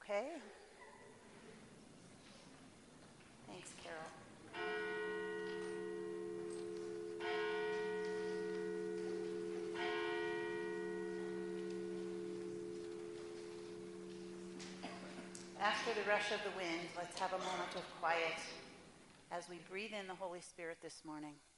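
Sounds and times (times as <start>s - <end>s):
speech: 0.1s - 0.7s, 3.5s - 4.9s, 15.6s - 18.7s, 19.3s - 21.5s
church bell ringing: 4.5s - 18.8s.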